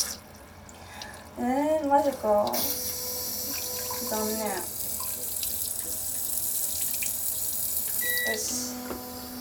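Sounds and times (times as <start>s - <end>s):
speech: 1.4s - 2.8s, 4.1s - 4.7s, 8.3s - 9.1s
electronic bidet toilet spraying water: 1.9s - 9.3s
short electronic beeps: 8.0s - 8.7s.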